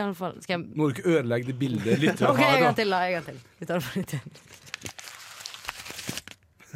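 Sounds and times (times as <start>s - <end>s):
speech: 0.0s - 4.7s
laughter: 1.7s - 2.8s
paper wrapping of packed lunch being pulled open: 4.3s - 6.5s
paper wrapping tearing: 4.5s - 6.4s.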